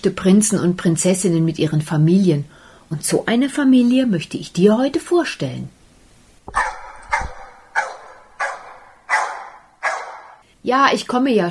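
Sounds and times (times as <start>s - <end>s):
speech: 0.0s - 5.8s, 10.6s - 11.4s
two dogs barking: 6.5s - 10.4s.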